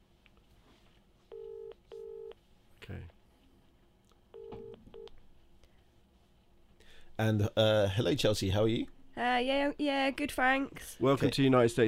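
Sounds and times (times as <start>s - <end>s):
electronic phone tones: 1.3s - 2.4s, 4.4s - 5.1s
speech: 2.9s - 3.2s, 7.2s - 11.8s.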